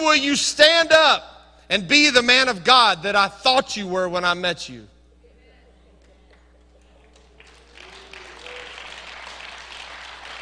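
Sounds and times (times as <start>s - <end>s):
speech: 0.0s - 4.9s
audience clapping: 6.0s - 10.3s.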